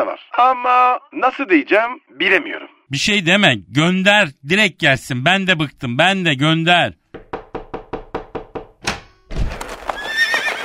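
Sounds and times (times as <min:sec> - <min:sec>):
speech: 0:00.1 - 0:07.0
thump: 0:08.8 - 0:09.8
racehorse whinnying: 0:09.8 - 0:10.6.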